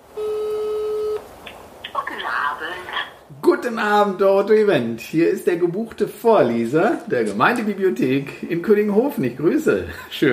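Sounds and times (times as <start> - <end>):
telephone line tone at a phone call: 0.2 - 1.2
speech: 3.6 - 10.3.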